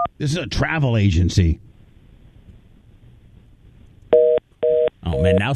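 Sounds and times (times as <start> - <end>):
speech: 0.2 - 1.7
telephone keypad dialing tones: 4.2 - 5.4.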